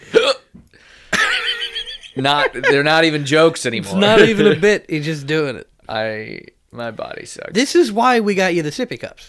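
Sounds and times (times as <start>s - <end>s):
person hiccuping: 0.0s - 0.5s, 3.8s - 4.6s
laughter: 1.2s - 3.0s, 3.8s - 4.7s
speech: 2.2s - 9.2s.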